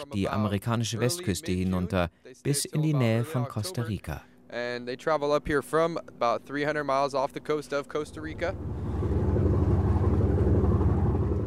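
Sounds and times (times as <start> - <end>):
speech: 0.0 - 9.1
boat engine droning while leaving harbour for the open sea: 5.8 - 11.4.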